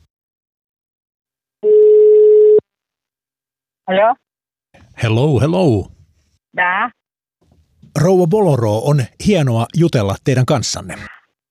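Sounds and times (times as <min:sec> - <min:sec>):
steady electronic ring tone over a phone line: 0:01.6 - 0:02.6
speech: 0:03.9 - 0:07.0, 0:07.9 - 0:11.2.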